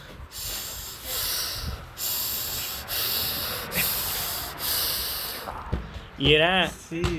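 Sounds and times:
person imitating heavy angry snorting breaths through the nose: 1.0 - 5.5
speech: 6.2 - 7.1.

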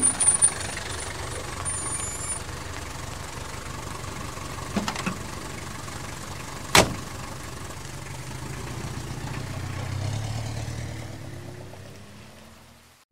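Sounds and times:
car engine idling: 0.0 - 13.0
taxi pulling up: 0.0 - 13.0
brief clunks: 6.7 - 7.0.

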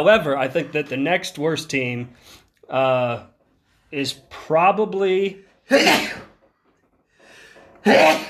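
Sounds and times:
speech: 0.0 - 3.3, 3.9 - 6.3, 7.8 - 8.2
person sneezing: 5.7 - 6.4, 7.8 - 8.2.

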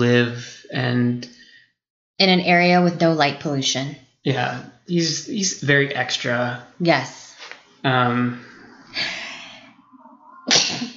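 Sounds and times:
speech: 0.0 - 1.4, 2.2 - 9.2
loud sneeze: 10.5 - 10.9.

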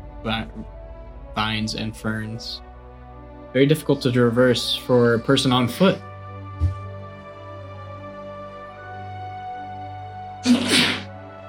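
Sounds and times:
speech: 0.2 - 0.8, 1.4 - 2.7, 3.5 - 6.8
person sneezing: 10.4 - 11.1.

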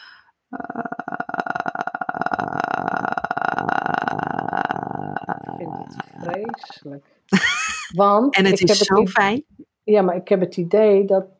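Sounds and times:
sustained creaky vocal fry: 0.0 - 7.0, 7.8 - 9.6
speech: 5.9 - 11.3
laughter: 7.3 - 9.2.

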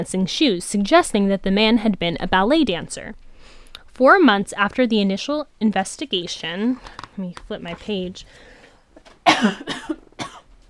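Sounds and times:
speech: 0.0 - 8.5, 9.3 - 10.0
dry coughing from a parched throat: 9.2 - 10.5.

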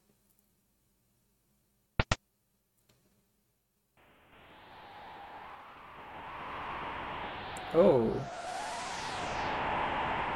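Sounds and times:
wind rushing from a secret passage behind a bookshelf: 4.0 - 10.3
speech: 7.7 - 8.4.

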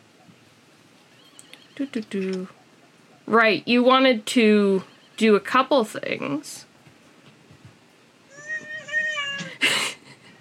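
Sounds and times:
speech: 1.8 - 2.6, 3.3 - 6.7
cat meowing: 8.3 - 9.6.

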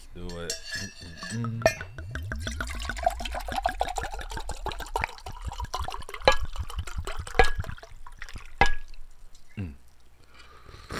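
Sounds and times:
speech: 0.2 - 0.7, 1.3 - 1.7
drink pouring into a glass: 1.4 - 10.1.

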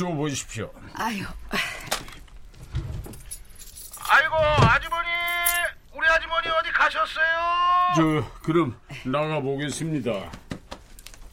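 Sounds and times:
speech: 0.0 - 2.0, 6.8 - 10.4
gate keys jangling as a bunch is shaken and handed over: 1.8 - 5.7.

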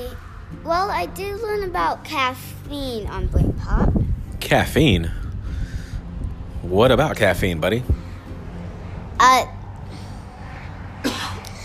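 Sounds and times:
speech: 0.6 - 5.2, 6.6 - 8.0, 9.2 - 9.6
person coughing: 11.0 - 11.6.

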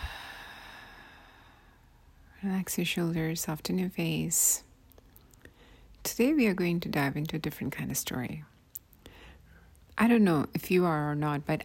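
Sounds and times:
long soft exhale during a guided breathing exercise: 0.0 - 1.8
speech: 2.4 - 4.7, 6.0 - 8.5, 10.0 - 11.6.

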